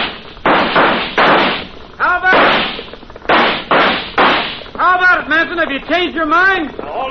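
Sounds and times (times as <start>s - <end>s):
gunshots fired by a posse at a house: 0.0s - 4.8s
speech: 5.4s - 6.9s.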